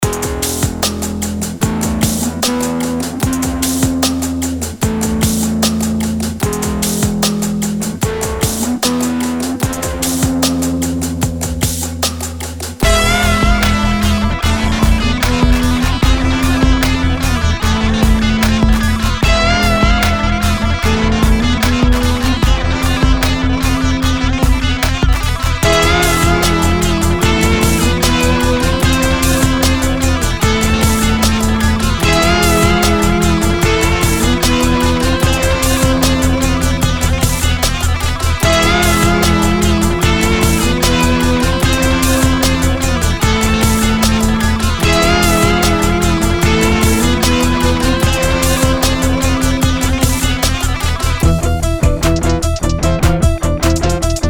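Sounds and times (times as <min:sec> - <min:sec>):
rock guitar over trap beat: 0:00.0 - 0:54.2.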